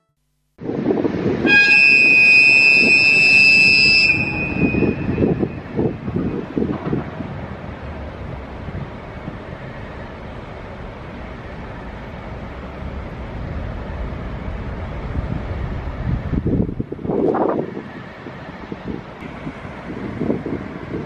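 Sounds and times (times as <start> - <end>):
sightseeing train rumbling and chugging pulling away from station: 0.6 - 21.0
sightseeing train horn blast departing station platform: 1.4 - 5.6.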